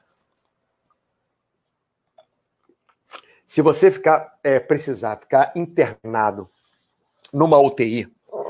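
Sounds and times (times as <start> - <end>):
person sipping water: 3.0 - 3.4
speech: 3.5 - 6.6, 7.3 - 8.2.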